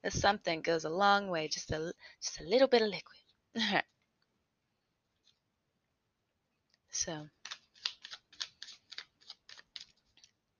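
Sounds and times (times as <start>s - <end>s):
speech: 0.0s - 3.9s, 6.9s - 7.4s
tarot cards being shuffled: 7.4s - 10.4s.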